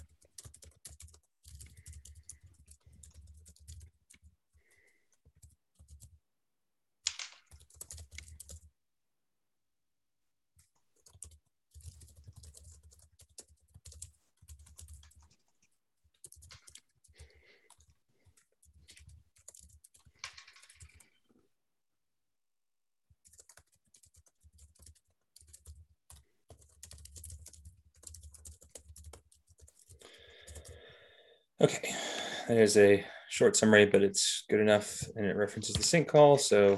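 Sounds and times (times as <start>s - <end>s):
typing on a computer keyboard: 0.0s - 6.2s, 7.1s - 8.7s, 10.6s - 21.2s, 23.2s - 30.8s
speech: 31.6s - 36.7s.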